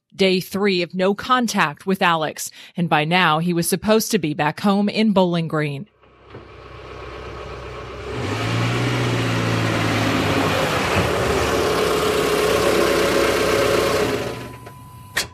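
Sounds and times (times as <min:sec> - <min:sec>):
speech: 0:00.2 - 0:06.4
car engine idling: 0:06.0 - 0:14.6.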